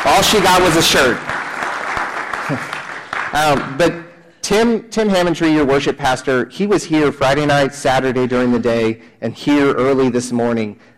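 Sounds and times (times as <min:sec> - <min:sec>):
crowd applauding: 0:00.0 - 0:04.0
speech: 0:00.1 - 0:01.4, 0:02.5 - 0:02.7, 0:03.3 - 0:10.9.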